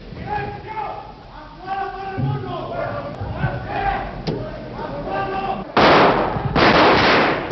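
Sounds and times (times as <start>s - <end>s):
people shouting in the Spanish Congress of Deputies: 0.2s - 7.0s
Civil Guards firing guns at the ceiling of the Spanish Congress of Deputies in 1981: 5.8s - 7.5s.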